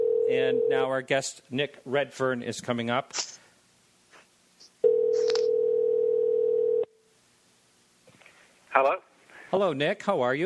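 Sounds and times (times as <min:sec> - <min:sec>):
telephone dial tone: 0:00.0 - 0:00.7, 0:04.8 - 0:06.9
speech: 0:00.3 - 0:03.4, 0:08.8 - 0:10.4.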